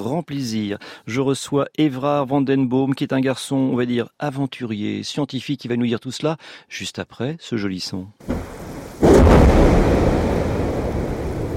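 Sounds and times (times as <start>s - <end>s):
speech: 0.0s - 9.9s
glacier collapsing with a deep roar and heavy rumble: 8.3s - 11.5s.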